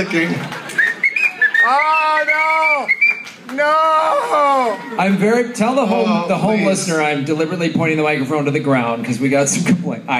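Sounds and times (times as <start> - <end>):
speech: 0.0 - 0.6, 1.6 - 10.1
person whistling high chirping notes: 0.8 - 3.4.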